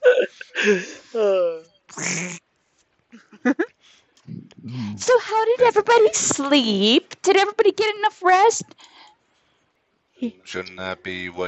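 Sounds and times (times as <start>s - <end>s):
speech: 0.6s - 2.4s, 5.6s - 8.8s, 10.2s - 11.4s
voice blowing fart noises: 1.9s - 2.4s
scattered vocal sounds: 4.3s - 5.4s, 10.2s - 11.4s.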